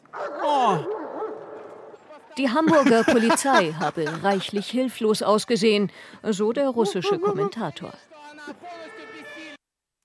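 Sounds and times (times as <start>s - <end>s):
dog giving a drawn-out bark sliding down in pitch: 0.1s - 1.9s, 6.8s - 7.6s
laughter: 2.4s - 5.1s, 6.7s - 7.8s
speech: 2.4s - 9.0s.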